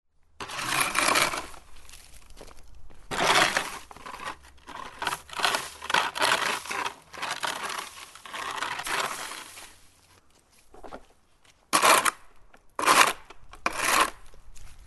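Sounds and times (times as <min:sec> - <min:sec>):
shovel: 0:00.4 - 0:02.1, 0:03.1 - 0:09.9, 0:11.7 - 0:12.2, 0:12.8 - 0:14.3.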